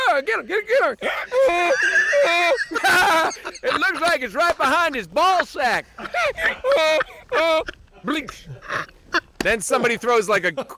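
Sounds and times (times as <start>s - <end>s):
speech: 0.2s - 10.7s
laughter: 0.9s - 10.7s
donkey braying in loud wheezy bursts: 1.0s - 4.0s, 5.4s - 9.8s.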